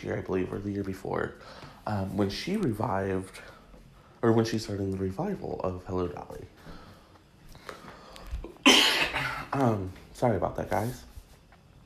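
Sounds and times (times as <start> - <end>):
speech: 0.0 - 3.6, 4.2 - 6.8, 9.5 - 11.1
person coughing harshly: 8.5 - 9.8.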